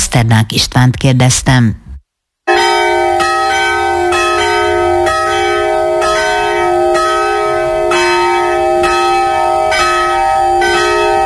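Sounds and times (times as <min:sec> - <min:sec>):
speech: 0:00.1 - 0:01.8
church bell ringing: 0:02.5 - 0:11.2.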